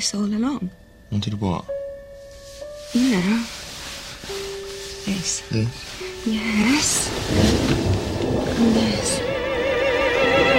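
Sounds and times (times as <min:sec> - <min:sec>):
speech: 0:00.0 - 0:01.8, 0:02.9 - 0:03.7, 0:05.1 - 0:09.3
steady hiss of storm noise: 0:02.6 - 0:10.5
low rolling thunder over the city of Florence: 0:06.5 - 0:10.5.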